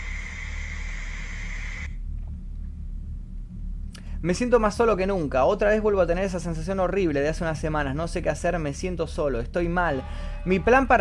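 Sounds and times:
television static hiss: 0:00.0 - 0:02.0
low rumble: 0:00.0 - 0:11.0
speech: 0:04.2 - 0:11.0.

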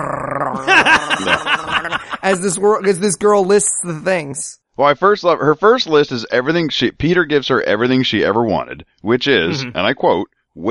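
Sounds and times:
person growling like a dog: 0:00.0 - 0:02.2
speech: 0:00.0 - 0:10.7
laughter: 0:00.6 - 0:03.0.

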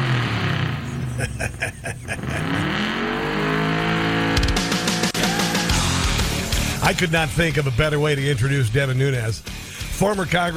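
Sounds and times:
gasoline car engine revving: 0:00.0 - 0:07.7
person laughing: 0:00.9 - 0:02.9
speech: 0:06.9 - 0:10.5.

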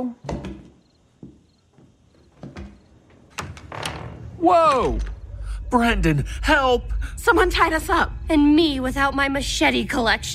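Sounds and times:
speech: 0:00.0 - 0:00.3, 0:04.4 - 0:05.1, 0:05.7 - 0:10.3
knocks and clunks of a house door: 0:00.2 - 0:05.2
door to stairs opening: 0:00.2 - 0:05.5.

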